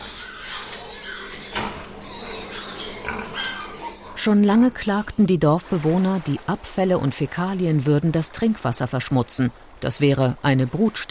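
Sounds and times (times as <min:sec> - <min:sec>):
pigs grunting and squealing at a pig fattening farm: 0:00.0 - 0:04.2
speech: 0:04.2 - 0:11.1.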